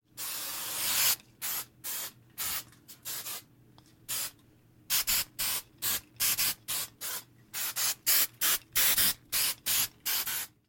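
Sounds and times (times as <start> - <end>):
hair spray spraying: 0.2 - 3.4, 4.9 - 10.5.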